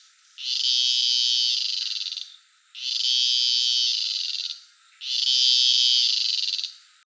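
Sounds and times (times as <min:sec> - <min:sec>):
cicada buzzing: 0:00.0 - 0:07.0.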